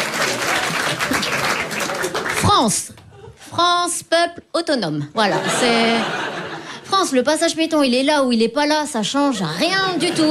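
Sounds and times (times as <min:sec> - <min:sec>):
audience applause: 0:00.0 - 0:02.6
speech: 0:02.5 - 0:06.2, 0:06.9 - 0:10.3
laughter: 0:05.2 - 0:06.9, 0:09.4 - 0:10.3.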